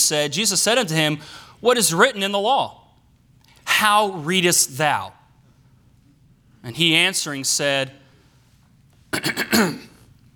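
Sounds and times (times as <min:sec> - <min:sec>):
speech: 0:00.1 - 0:02.8, 0:03.8 - 0:05.2, 0:06.6 - 0:08.0, 0:09.1 - 0:09.9
man clearing his throat: 0:09.1 - 0:10.1.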